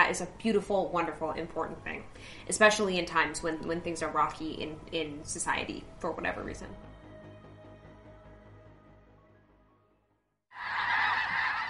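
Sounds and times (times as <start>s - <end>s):
speech: 0.0s - 6.9s
large flock of migrating geese honking at Lake Byron in South Dakota: 10.6s - 11.6s.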